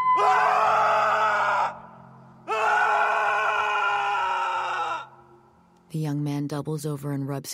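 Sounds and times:
speech: 0:00.2 - 0:00.6, 0:05.9 - 0:07.5
young man screaming in the woods: 0:00.2 - 0:01.9, 0:02.5 - 0:05.2.

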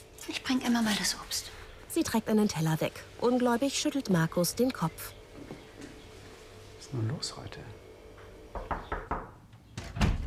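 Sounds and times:
speech: 0:00.5 - 0:05.2, 0:06.9 - 0:07.8
child's bedroom door thumps: 0:08.5 - 0:10.2.

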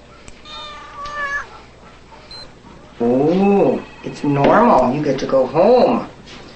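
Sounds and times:
cat meowing: 0:00.4 - 0:01.5
speech: 0:04.2 - 0:06.4.

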